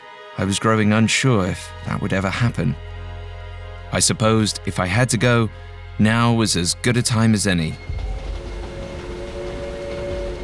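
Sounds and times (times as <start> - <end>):
speech: 0.4 - 2.9, 3.9 - 8.1
train running on rails: 7.1 - 10.4.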